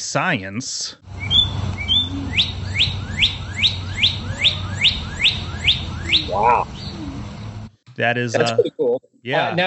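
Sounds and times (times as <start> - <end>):
speech: 0.0 - 1.4, 6.3 - 6.8, 8.0 - 9.6
northern cardinal singing rising whistled notes: 1.2 - 7.2.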